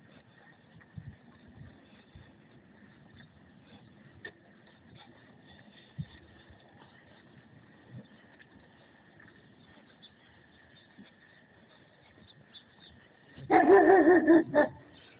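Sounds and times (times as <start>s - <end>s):
faint steady whine: 0.0s - 15.1s
German Shepherd dog barking: 13.5s - 14.8s.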